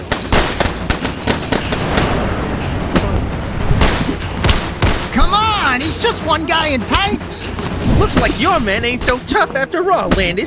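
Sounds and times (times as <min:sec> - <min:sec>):
rapid gunfire in a shootout aimed at a signal tower: 0:00.0 - 0:09.2
low steady rumble: 0:00.3 - 0:09.5
speech: 0:05.8 - 0:10.4.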